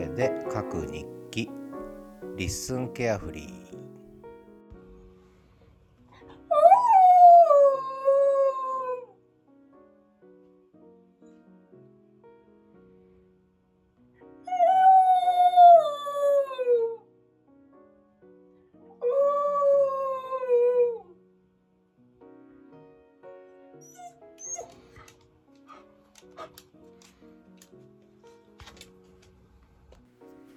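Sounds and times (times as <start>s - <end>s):
speech: 0.2s - 1.6s, 2.4s - 3.6s
dog howling mournfully: 6.3s - 9.1s, 14.5s - 17.1s, 19.0s - 21.1s.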